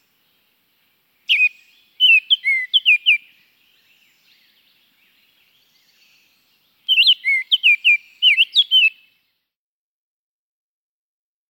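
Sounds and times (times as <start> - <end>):
Baltimore oriole singing rich slurred whistled notes in the Chicago region: 1.3 - 9.2.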